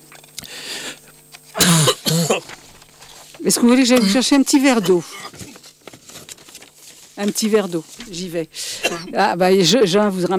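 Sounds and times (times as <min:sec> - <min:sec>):
person coughing after something went down the wrong way: 0:01.6 - 0:02.5, 0:03.9 - 0:05.6, 0:08.6 - 0:09.2
speech: 0:03.4 - 0:05.4, 0:07.2 - 0:10.3.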